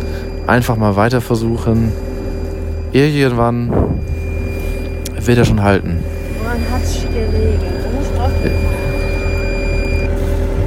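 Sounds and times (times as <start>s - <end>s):
boat depth sounder alarm beeping: 0.0s - 10.6s
continuous low boat engine rumble: 0.0s - 10.6s
speech: 0.5s - 2.1s, 2.9s - 4.2s, 5.2s - 8.6s.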